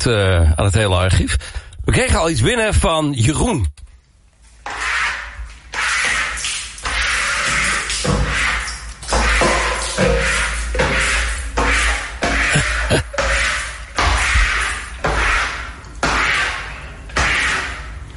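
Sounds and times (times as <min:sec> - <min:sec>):
speech: 0:00.0 - 0:03.8
squeegee pulled across a wet shower wall: 0:04.5 - 0:18.1.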